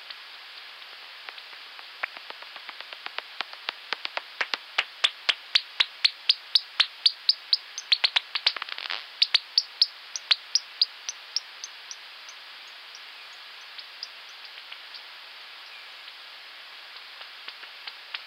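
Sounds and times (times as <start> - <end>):
bat echolocation pulses: 2.0 - 12.0.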